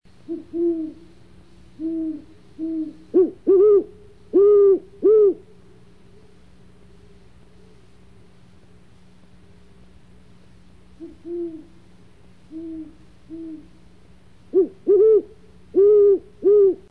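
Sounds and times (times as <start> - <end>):
Great Horned Owl calling in summer: 0.2 - 1.1, 1.7 - 5.6, 11.0 - 11.8, 12.5 - 13.8, 14.5 - 16.9.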